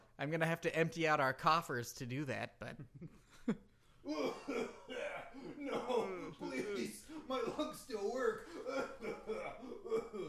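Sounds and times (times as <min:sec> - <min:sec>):
speech: 0:00.2 - 0:10.2
throaty coughs: 0:04.1 - 0:10.2.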